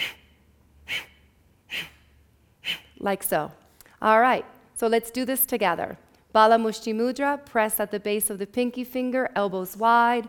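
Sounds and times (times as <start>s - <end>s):
forceful exhalations from abdominal contractions during pranayama breathing: 0.0s - 3.0s
speech: 3.0s - 10.2s.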